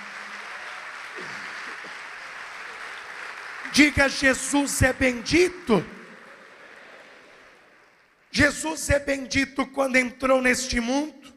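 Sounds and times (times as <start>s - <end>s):
audience applauding: 0.0s - 8.4s
speech: 3.7s - 6.0s, 8.4s - 11.3s.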